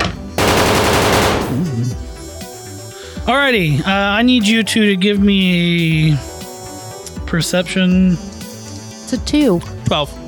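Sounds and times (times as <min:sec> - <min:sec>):
rapid gunfire from a shooter in a tower: 0:00.4 - 0:01.9
speech: 0:01.6 - 0:02.1, 0:03.2 - 0:06.3, 0:07.3 - 0:08.3, 0:09.1 - 0:10.2.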